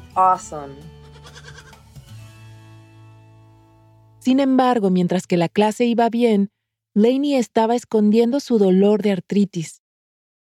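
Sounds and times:
speech: 0.2s - 1.0s, 4.2s - 9.8s
goat bleating: 1.0s - 1.8s.

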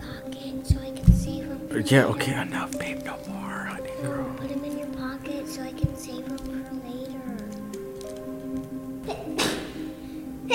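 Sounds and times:
sustained musical tones: 0.0s - 10.5s
speech: 1.8s - 3.3s
child sneezing: 9.0s - 9.9s.

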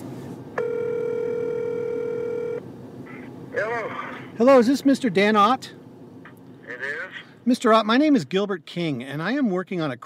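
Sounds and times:
ringback tone on an outgoing phone call: 0.6s - 2.6s
speech: 3.8s - 5.8s, 7.4s - 10.0s.

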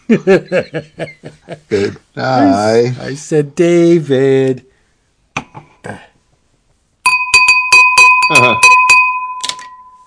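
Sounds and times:
laughter: 0.0s - 2.3s
speech: 0.1s - 4.7s, 5.6s - 6.1s, 8.3s - 8.8s
finger rubbed around a wine glass rim ringing: 7.1s - 10.0s.

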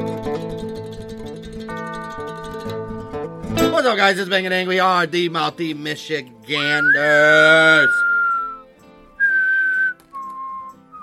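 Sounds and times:
speech: 3.8s - 8.0s
shrill whistle: 6.6s - 11.0s.

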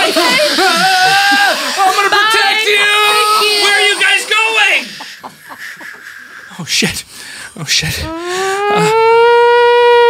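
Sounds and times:
laughter: 0.0s - 6.8s
speech: 6.8s - 7.0s, 7.8s - 8.2s
outdoor tornado warning siren wailing: 7.9s - 10.0s.

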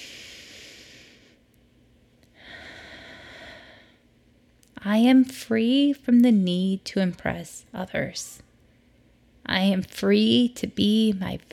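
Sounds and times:
slow deep breaths during a guided relaxation exercise: 0.0s - 1.4s, 2.3s - 4.1s
speech: 4.8s - 8.5s, 9.5s - 11.5s.

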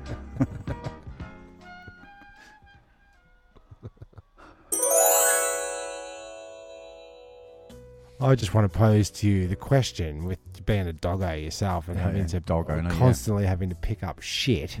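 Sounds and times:
soft tinkling notes: 4.7s - 7.7s
phone ringtone with bright electronic chime: 4.8s - 7.7s
speech: 8.2s - 14.7s.

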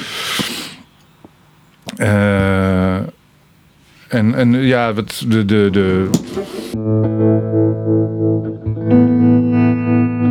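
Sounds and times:
speech: 2.0s - 2.4s, 4.2s - 8.5s
electric guitar chord with tremolo pedal effect: 6.8s - 10.2s.

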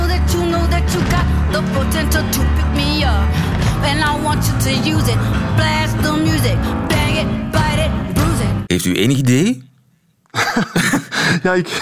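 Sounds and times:
alternative rock song with drums, bass, guitar and sung vocal: 0.0s - 8.7s
speech: 3.2s - 7.4s, 8.7s - 9.7s, 10.4s - 11.8s
laughter: 10.3s - 11.7s.

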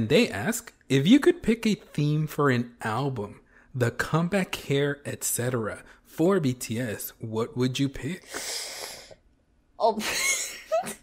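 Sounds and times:
speech: 0.0s - 8.9s, 9.8s - 11.0s
person gasping: 8.2s - 9.2s
quick huff: 8.2s - 9.2s.

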